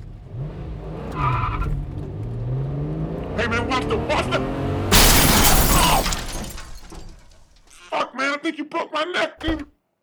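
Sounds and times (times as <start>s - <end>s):
car engine roaring as the vehicle speeds off: 0.0s - 7.4s
tire screech: 0.4s - 7.0s
speech: 3.4s - 5.4s, 7.9s - 9.7s.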